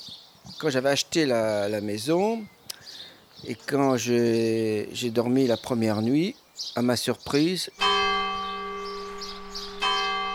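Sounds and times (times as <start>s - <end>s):
speech: 0.6s - 2.6s, 3.4s - 8.0s
church bell tolling at night: 7.8s - 10.3s.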